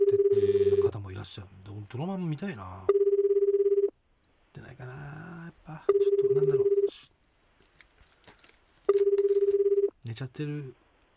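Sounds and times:
telephone ringing on an unanswered call: 0.0 - 0.9, 2.9 - 3.9, 5.9 - 6.9, 8.9 - 9.9
speech: 1.2 - 2.9, 4.6 - 7.2, 10.2 - 10.8.

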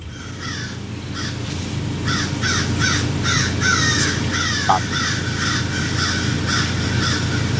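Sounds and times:
several crows cawing outside a house: 0.0 - 7.5
steady low outdoor rumble: 0.0 - 7.5.

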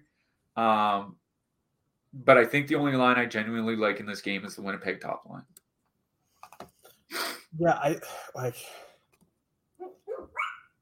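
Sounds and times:
speech: 0.6 - 1.2, 2.1 - 5.6, 6.6 - 8.8
dog barking: 9.8 - 10.8.

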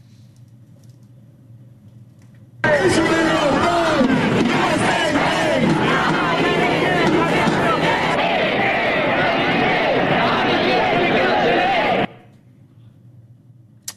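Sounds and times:
large protest crowd chanting loudly in unison: 2.6 - 12.3.

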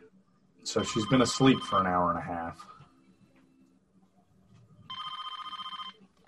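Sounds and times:
speech: 0.6 - 2.7
telephone ringing: 0.8 - 2.0, 4.9 - 6.0.

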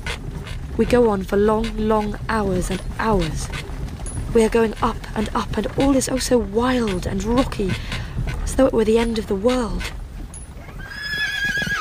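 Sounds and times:
horse hooves clip-clopping on a rocky mountain way: 0.0 - 11.7
speech: 0.1 - 3.6, 4.4 - 10.0
horse neighing on a rocky mountain way: 10.6 - 11.7.

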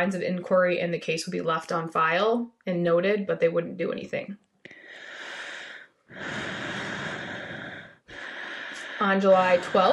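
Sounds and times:
speech: 0.0 - 5.0, 9.0 - 9.9
loud heavy breathing over a phone line: 4.7 - 9.9.

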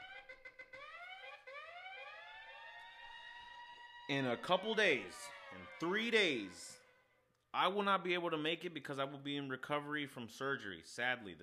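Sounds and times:
electronic alarm with rising whoops: 0.0 - 7.0
speech: 4.1 - 6.8, 7.6 - 11.4.

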